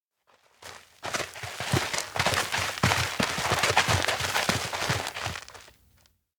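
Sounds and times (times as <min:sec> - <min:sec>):
footsteps in an outdoor schoolyard: 0:00.3 - 0:05.8.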